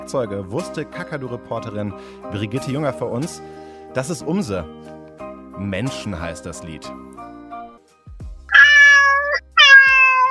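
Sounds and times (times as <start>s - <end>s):
speech: 0.1s - 5.0s, 5.6s - 7.2s
pet cat meowing: 8.5s - 10.2s.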